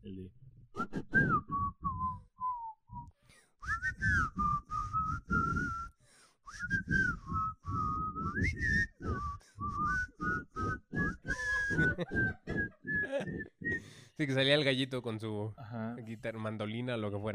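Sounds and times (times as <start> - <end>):
person whistling a song's intro melody: 0.8 - 14.0
laughter: 11.4 - 13.6
speech: 14.2 - 17.3.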